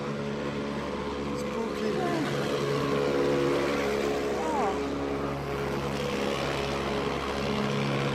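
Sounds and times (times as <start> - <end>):
taxis and buses rumbling past with idling and revving engines: 0.0 - 8.1
person exclaiming: 4.3 - 4.9.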